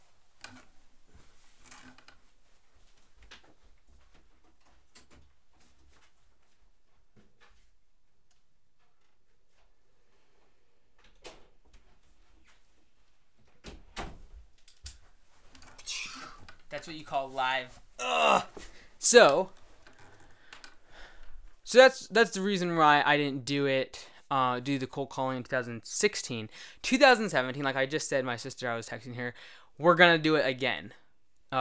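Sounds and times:
door being closed: 13.6 - 14.5
speech: 16.8 - 19.6, 21.7 - 31.6.

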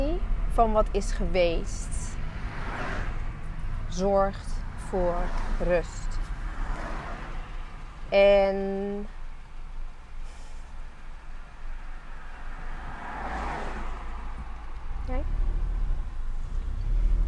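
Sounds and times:
low engine and road rumble inside a moving car: 0.0 - 17.2
speech: 0.6 - 2.2, 3.9 - 6.2, 8.1 - 9.2.

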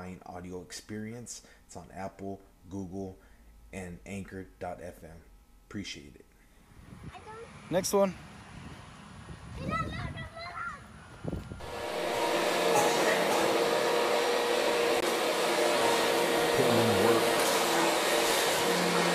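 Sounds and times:
speech: 0.1 - 6.3, 7.0 - 8.3
vacuum cleaner running on hard floor: 11.5 - 19.1.

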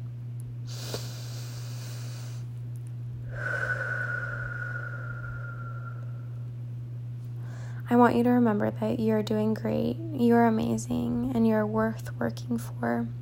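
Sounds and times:
steady low hum: 0.0 - 13.2
slow deep breath in and out with faint whistling exhale: 0.7 - 2.5, 3.2 - 6.3, 7.4 - 7.8
speech: 7.9 - 13.2.

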